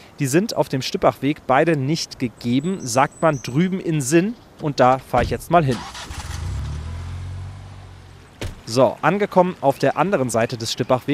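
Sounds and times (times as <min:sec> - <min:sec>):
road noise on a rough potholed road: 0:00.0 - 0:11.1
speech: 0:00.2 - 0:06.1, 0:08.7 - 0:11.1
car engine rumble on a rough potholed road: 0:04.9 - 0:08.8.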